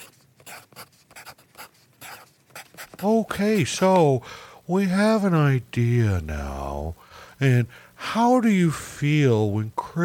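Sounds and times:
pen scratching on paper as notes are written by hand: 0:00.0 - 0:03.2
speech: 0:03.0 - 0:10.0.

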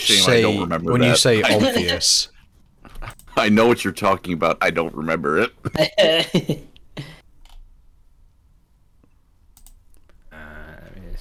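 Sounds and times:
speech: 0:00.0 - 0:02.3, 0:03.0 - 0:07.1
slow one-handed typing on a computer keyboard: 0:09.6 - 0:09.8.

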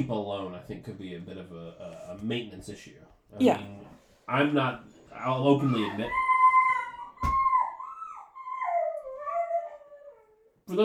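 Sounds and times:
speech: 0:00.0 - 0:06.3, 0:10.7 - 0:10.8
dog howling to be let out: 0:05.6 - 0:10.5.

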